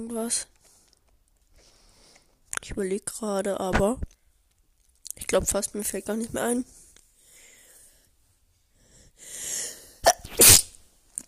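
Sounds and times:
speech: 0:00.0 - 0:00.6, 0:02.6 - 0:04.2, 0:05.2 - 0:06.8
person sneezing from dust and a cat allergy: 0:10.0 - 0:10.8.

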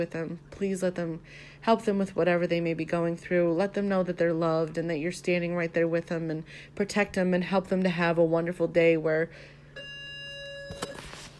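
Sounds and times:
speech: 0:00.0 - 0:09.9
timer buzzer going off: 0:09.7 - 0:11.1.

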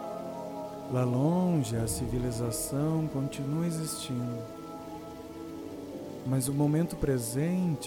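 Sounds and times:
water running in a natural landscape: 0:00.1 - 0:07.8
speech: 0:00.9 - 0:04.6, 0:06.3 - 0:07.8
soft sustained tonal hum: 0:01.5 - 0:05.4.

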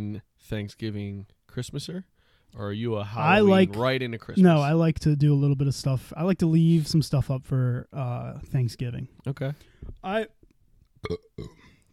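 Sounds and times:
speech: 0:00.1 - 0:10.4, 0:11.0 - 0:11.7
loud throaty burps: 0:11.0 - 0:11.9.

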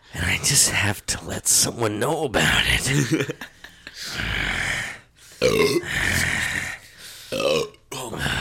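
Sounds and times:
speech: 0:00.1 - 0:04.3, 0:05.4 - 0:06.3
person grunting: 0:04.1 - 0:06.8
person belching into the microphone: 0:05.4 - 0:06.2, 0:07.3 - 0:07.9.

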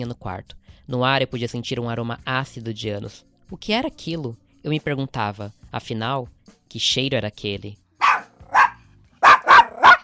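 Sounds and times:
speech: 0:00.0 - 0:07.8
dog barking: 0:08.0 - 0:10.0.

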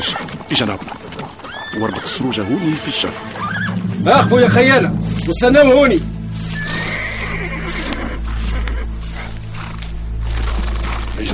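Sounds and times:
speech: 0:00.0 - 0:01.0, 0:01.7 - 0:06.1
horse neighing with a drawn-out wavering whinny: 0:01.4 - 0:03.8, 0:06.5 - 0:09.3
rough outdoor noise: 0:02.2 - 0:11.3
steady low rumble: 0:03.2 - 0:10.4.

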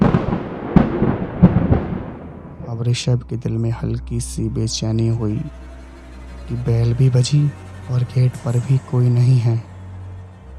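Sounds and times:
sharp thunder cracks: 0:00.0 - 0:03.4
deep continuous thunder rumble at night: 0:00.0 - 0:05.6
speech: 0:02.8 - 0:05.7, 0:06.5 - 0:09.7.

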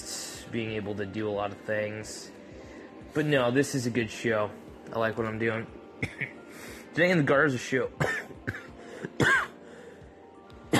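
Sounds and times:
speech: 0:00.5 - 0:02.4, 0:03.1 - 0:06.4, 0:07.0 - 0:08.2
person clearing throat: 0:06.0 - 0:06.4, 0:08.0 - 0:09.6
short harsh cough: 0:06.0 - 0:06.4, 0:08.0 - 0:09.6.

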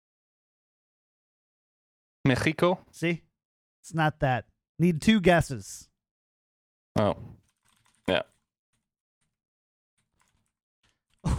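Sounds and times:
speech: 0:02.3 - 0:05.9, 0:07.0 - 0:07.3, 0:08.1 - 0:08.3
typing on a computer keyboard: 0:07.4 - 0:08.4, 0:10.0 - 0:11.3.

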